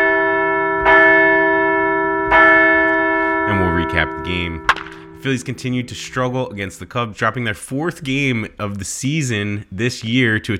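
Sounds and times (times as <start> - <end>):
large bell ringing: 0.0 - 7.1
speech: 3.9 - 10.5.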